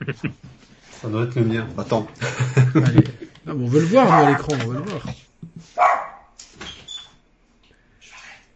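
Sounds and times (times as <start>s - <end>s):
laughter: 0.0s - 0.4s, 2.2s - 5.1s
speech: 0.1s - 0.4s, 1.0s - 5.2s
dog barking excitedly in sharp yaps: 3.8s - 6.3s.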